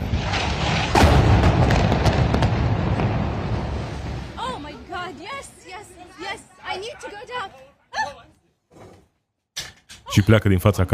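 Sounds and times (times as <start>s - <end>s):
loud deep explosion from air raid: 0.0s - 4.7s
speech: 10.2s - 10.9s.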